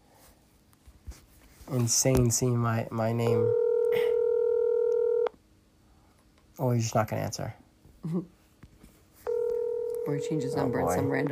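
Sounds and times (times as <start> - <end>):
speech: 1.7 - 4.0, 6.6 - 8.4, 10.1 - 11.3
electronic ringback tone from a phone line on an outgoing call: 3.3 - 5.3, 9.3 - 11.3.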